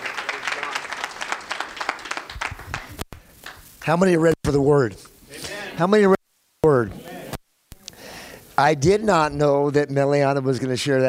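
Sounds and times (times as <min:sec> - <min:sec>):
crowd hand clapping applause: 0:00.0 - 0:04.0
speech: 0:03.9 - 0:05.1, 0:05.8 - 0:07.0, 0:08.6 - 0:11.0.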